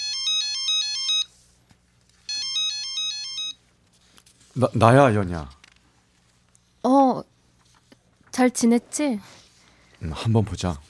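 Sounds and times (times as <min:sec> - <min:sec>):
telephone ringing with warbling electronic trill: 0:00.0 - 0:01.3, 0:02.3 - 0:03.6
speech: 0:04.6 - 0:05.6, 0:08.4 - 0:09.4, 0:10.0 - 0:10.8.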